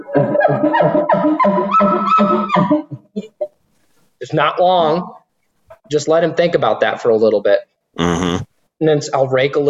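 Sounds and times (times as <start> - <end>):
speech: 0.2 - 2.8, 4.3 - 5.2, 5.9 - 9.6
person imitating a cow with guttural grunts: 8.0 - 8.5.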